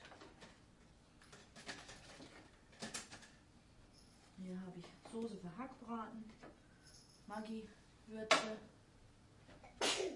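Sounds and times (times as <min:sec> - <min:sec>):
speech: 0:04.5 - 0:06.6, 0:07.3 - 0:08.8
person sneezing: 0:09.6 - 0:10.1.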